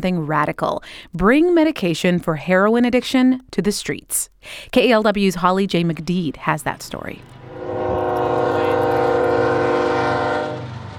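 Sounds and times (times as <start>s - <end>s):
speech: 0.0s - 7.8s
train horn blast in Bay Point by the Delta: 7.4s - 10.9s.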